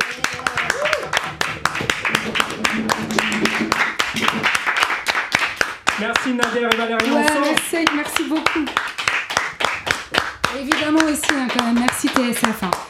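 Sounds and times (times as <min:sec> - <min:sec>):
voices and cheers: 0:00.0 - 0:01.4, 0:07.0 - 0:07.8
audience applauding: 0:00.0 - 0:12.8
speech: 0:06.0 - 0:08.9, 0:10.5 - 0:12.8.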